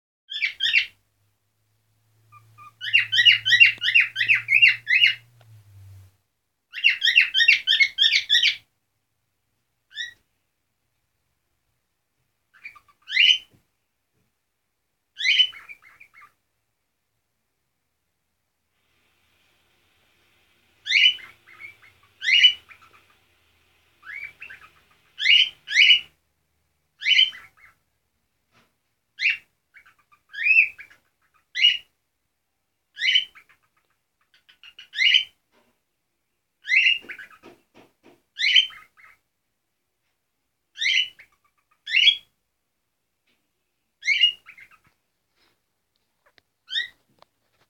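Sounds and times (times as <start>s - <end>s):
cockatiel parrot voice: 0.3s - 1.0s, 2.2s - 6.1s, 6.7s - 8.7s, 9.9s - 10.2s, 12.5s - 13.6s, 15.2s - 16.4s, 18.8s - 26.2s, 27.0s - 27.8s, 29.2s - 31.9s, 32.9s - 35.4s, 36.6s - 37.6s, 38.4s - 39.2s, 40.8s - 42.3s, 44.0s - 45.0s, 46.6s - 47.0s.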